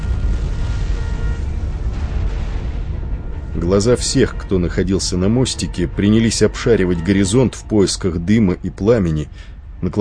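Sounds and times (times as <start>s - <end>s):
loud explosion of a torpedo striking a ship at sea: 0.0s - 6.5s
speech: 3.6s - 9.9s.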